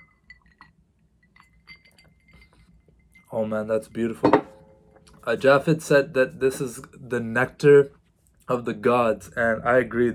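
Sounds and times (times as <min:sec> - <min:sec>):
glasses clinking together in a toast: 0:00.0 - 0:03.4, 0:04.1 - 0:05.1
speech: 0:03.4 - 0:04.4, 0:05.3 - 0:10.1.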